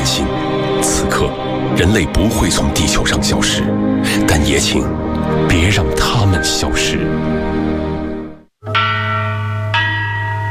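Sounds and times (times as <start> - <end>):
speech: 0.2 - 7.9
deep bronze bell ringing: 8.6 - 10.4.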